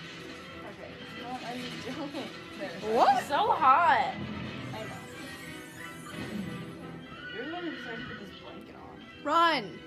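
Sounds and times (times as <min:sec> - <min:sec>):
speech: 0:01.8 - 0:04.3, 0:07.9 - 0:09.8
horse whinnying: 0:04.8 - 0:08.9.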